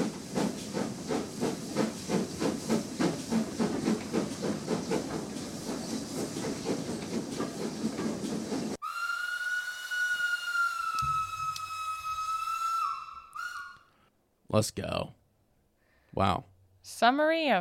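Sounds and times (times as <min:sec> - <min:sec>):
steam train chugging with hissing puffs: 0:00.0 - 0:13.8
loud sustained steam whistle: 0:08.8 - 0:14.1
speech: 0:14.6 - 0:15.2, 0:16.2 - 0:17.5.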